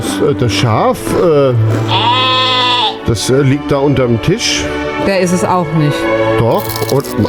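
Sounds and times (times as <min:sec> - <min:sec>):
speech: 0:00.2 - 0:02.1, 0:03.1 - 0:07.2
sheep bleating: 0:01.7 - 0:03.2.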